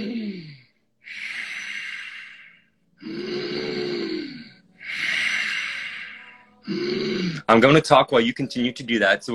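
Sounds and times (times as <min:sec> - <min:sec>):
slow deep ujjayi breathing with throaty snoring rasp: 0:00.0 - 0:07.5
speech: 0:07.5 - 0:09.3.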